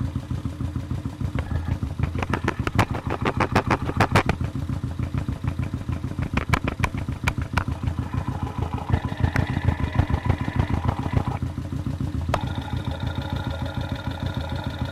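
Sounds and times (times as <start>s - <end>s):
motorcycle engine idling recorded by a contact mic at the exhaust pipe tip: 0.0s - 14.8s.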